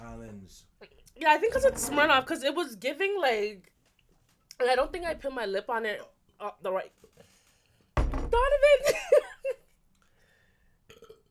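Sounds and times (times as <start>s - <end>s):
speech: 0.4s - 3.7s, 4.6s - 7.2s, 8.3s - 9.2s
person burping: 10.9s - 11.3s.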